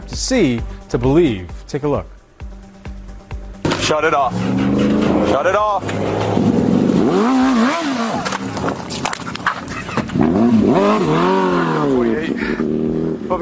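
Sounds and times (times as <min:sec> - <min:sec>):
speech: 0:00.2 - 0:02.2, 0:03.9 - 0:06.5, 0:10.3 - 0:12.6, 0:13.3 - 0:13.4
motorcycle engine revving as it pulls away: 0:03.6 - 0:13.4.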